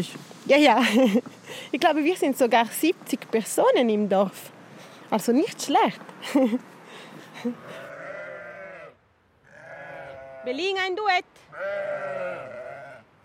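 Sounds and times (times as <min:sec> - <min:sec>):
speech: 0:00.0 - 0:06.7, 0:07.4 - 0:07.8, 0:10.4 - 0:12.6
freshly shorn sheep bleating in a large enclosure in front of a barn: 0:07.6 - 0:10.7, 0:11.5 - 0:13.1.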